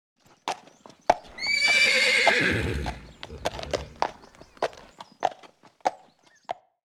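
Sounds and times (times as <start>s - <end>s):
hoofbeats clip-clopping on a hard surface: 0.2s - 6.8s
pony giving a long shrill quavering whinny: 1.3s - 4.1s.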